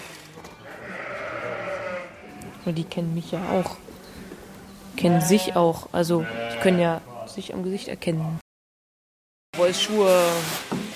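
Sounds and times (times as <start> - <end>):
shorn sheep bleating in a pen: 0.6 - 2.4, 5.0 - 7.0
speech: 2.6 - 3.8, 5.0 - 8.4, 9.6 - 10.8.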